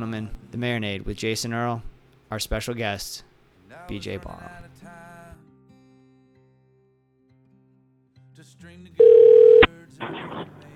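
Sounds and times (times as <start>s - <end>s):
speech: 0.0s - 5.1s
loud steady telephone dial tone: 9.0s - 9.7s.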